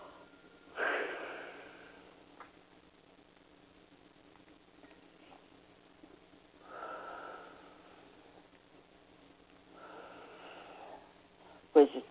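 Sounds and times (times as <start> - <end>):
deep breaths during a slow breathing exercise: 0.0 - 2.2, 6.6 - 8.4, 9.6 - 11.7.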